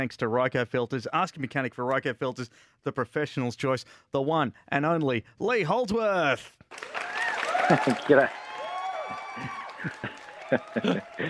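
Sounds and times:
speech: 0.0 - 8.4, 9.4 - 11.2
crowd applause: 6.7 - 11.2
laughter: 7.3 - 8.3, 8.9 - 11.2.

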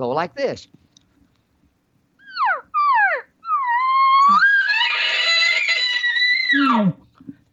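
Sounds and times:
speech: 0.0 - 0.8, 6.5 - 7.3
imitated cow elk mews: 2.2 - 7.0.

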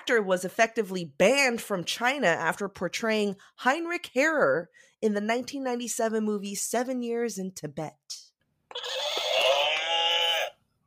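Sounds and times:
speech: 0.0 - 9.2
horse whinny buzzer sound effect: 8.7 - 10.6.

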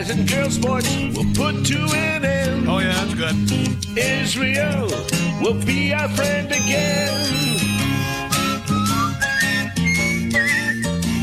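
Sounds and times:
speech: 0.0 - 7.7
steady instrumental backing with chords: 0.0 - 11.2
person whistling a bright wandering melody: 6.4 - 11.2.

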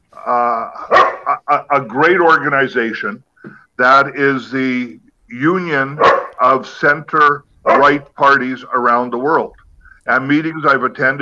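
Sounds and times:
dogs fighting and barking: 0.8 - 1.4, 6.0 - 6.5, 7.7 - 8.1
dog whining harmonic yelp: 0.9 - 1.3, 6.0 - 6.4, 7.7 - 8.0
speech: 1.5 - 11.2.

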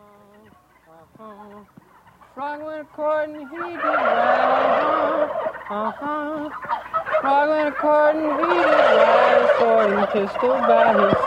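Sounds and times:
man singing an old folk song: 0.0 - 1.7, 2.3 - 6.6, 7.2 - 11.2
turkeys gobbling: 0.2 - 11.2
speech: 1.1 - 11.2.

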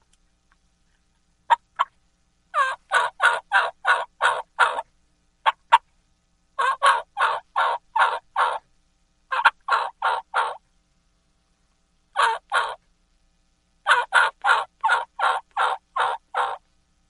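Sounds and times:
jake yelp on a turkey call imitating a young gobbler: 2.5 - 5.8, 6.6 - 8.6, 9.3 - 10.6, 12.2 - 12.8, 13.8 - 16.6.

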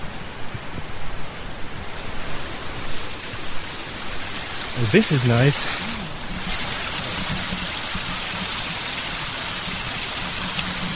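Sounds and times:
small stream splashing and gurgling over a rock: 2.6 - 10.9
speech: 4.8 - 5.9.

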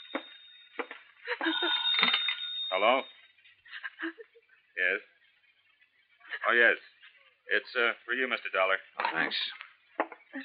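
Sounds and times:
telephone ringing: 0.0 - 3.2
speech: 1.4 - 3.2, 6.5 - 6.9, 7.5 - 9.6.

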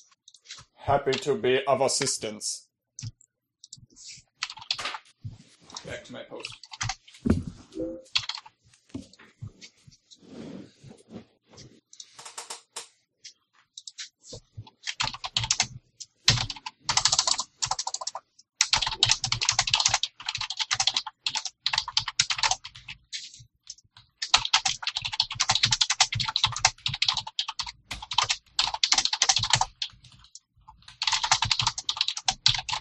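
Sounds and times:
speech: 0.9 - 3.1
typing on a computer keyboard: 4.4 - 5.0, 6.4 - 7.1, 8.1 - 8.5, 14.7 - 32.8.

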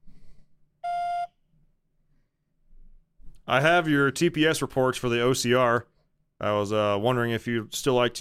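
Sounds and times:
voicemail beep: 0.8 - 1.4
speech: 3.5 - 8.1.

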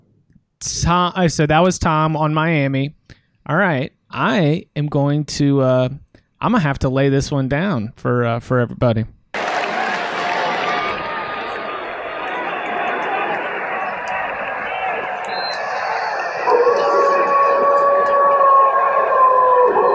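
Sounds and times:
speech: 0.6 - 9.2
pack of wolves howling: 10.0 - 19.9.

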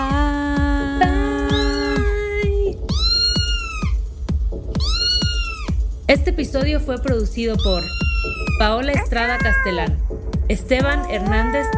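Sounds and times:
steady thumping techno beat: 0.0 - 11.7
people imitating kitten meows: 1.0 - 4.0, 4.8 - 5.7, 7.6 - 10.0, 10.7 - 11.7
speech: 6.1 - 11.7.

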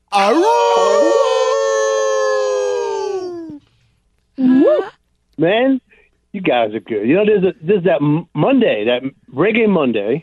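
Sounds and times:
man imitating a wolf howl: 0.1 - 3.6
speech: 0.2 - 0.6, 5.4 - 10.2.

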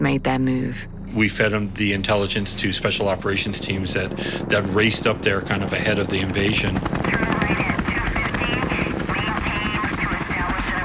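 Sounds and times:
speech: 0.1 - 7.8
helicopter roaring overhead with rotor thumping: 1.2 - 10.8.

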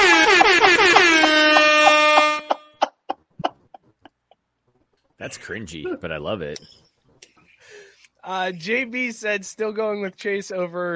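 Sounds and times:
brassy rap air horn sound effect blasts: 0.0 - 2.6
speech: 5.2 - 6.8, 8.2 - 10.9.

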